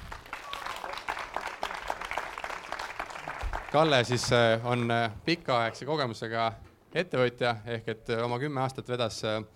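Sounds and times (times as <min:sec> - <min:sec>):
room full of people clapping: 0:00.0 - 0:04.5
speech: 0:03.7 - 0:09.5.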